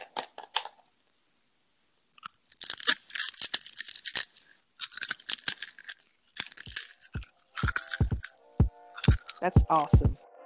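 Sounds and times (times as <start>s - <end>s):
crackly chewing: 2.1s - 9.6s
biting into a crunchy piece of crisp food: 2.2s - 9.5s
speech: 9.4s - 10.2s.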